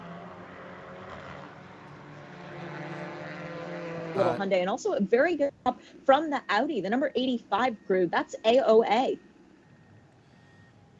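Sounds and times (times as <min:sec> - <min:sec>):
speech: 0:04.2 - 0:09.3
front loader reversing beeps at a race track: 0:09.6 - 0:10.9.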